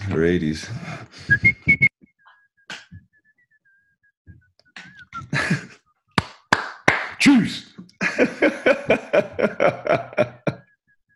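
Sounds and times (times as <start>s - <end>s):
speech: 0.1s - 1.6s
person whistling a hockey team goal song tune: 1.2s - 5.8s
laughter: 4.8s - 5.8s, 8.0s - 10.7s.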